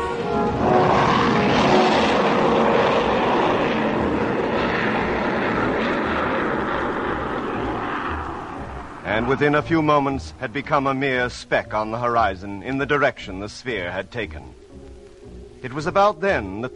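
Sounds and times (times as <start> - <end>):
huge freighter aircraft roaring overhead: 0.0 - 12.6
speech: 9.2 - 14.6, 15.6 - 16.7.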